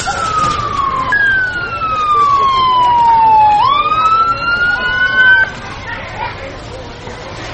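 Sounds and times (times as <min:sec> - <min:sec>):
ambulance siren wailing with sliding pitch sweeps: 0:00.0 - 0:05.6
low traffic rumble: 0:00.0 - 0:07.5.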